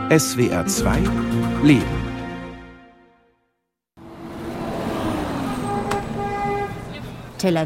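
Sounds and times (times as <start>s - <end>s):
speech: 0.1s - 2.1s, 7.4s - 7.6s
busy city street traffic in Tel Aviv: 4.0s - 7.6s
car horns honking: 4.0s - 7.6s.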